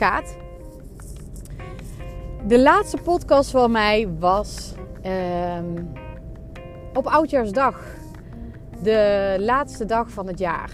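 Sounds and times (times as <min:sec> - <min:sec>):
speech: 0:00.0 - 0:00.4, 0:02.4 - 0:06.1, 0:07.0 - 0:08.0, 0:08.8 - 0:10.7
car interior engine and road drone while driving: 0:00.0 - 0:10.7
faint rustles and tones: 0:00.0 - 0:10.7.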